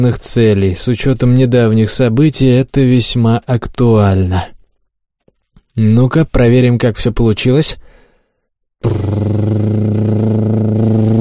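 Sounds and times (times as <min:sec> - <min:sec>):
speech: 0:00.0 - 0:04.6, 0:05.8 - 0:07.9, 0:08.8 - 0:09.6
powerful motorcycle engine revving: 0:08.8 - 0:11.1.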